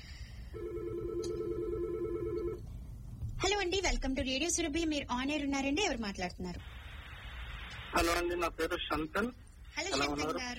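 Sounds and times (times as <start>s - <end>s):
low hum: 0.0s - 10.5s
telephone ringing for an incoming call to a radio show: 0.5s - 2.7s
speech: 3.5s - 6.7s, 7.9s - 10.5s.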